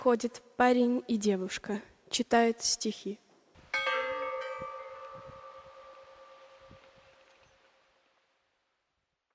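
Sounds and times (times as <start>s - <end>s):
speech: 0.0s - 3.2s
large bell struck and ringing: 3.8s - 7.3s.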